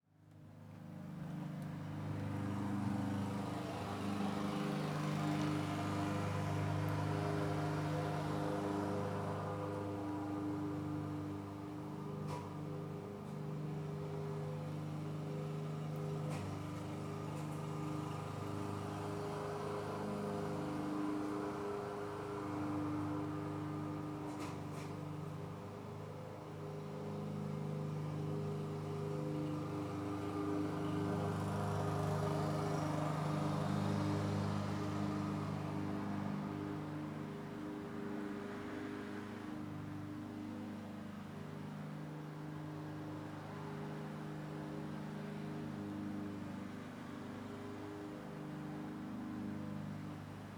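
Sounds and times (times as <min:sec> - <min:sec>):
lawn mower: 0:00.2 - 0:50.5.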